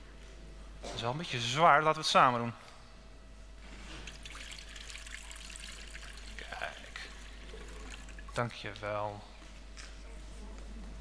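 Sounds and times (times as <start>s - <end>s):
speech: 1.0s - 2.7s, 8.4s - 9.3s
water poured into a baptismal font: 4.0s - 8.4s
faint room murmur: 9.9s - 10.9s.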